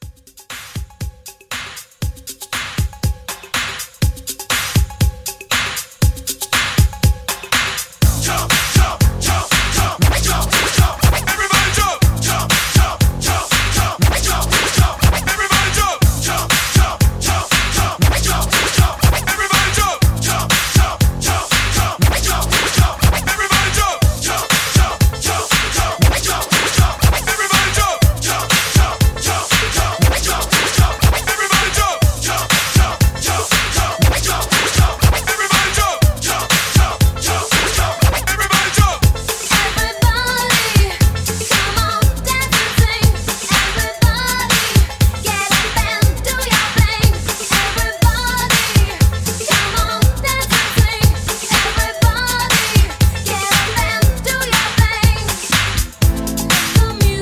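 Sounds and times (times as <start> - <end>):
80s hype drum beat at 120: 0.0 - 57.2
80s hype record scratching: 8.3 - 40.8, 51.5 - 57.2.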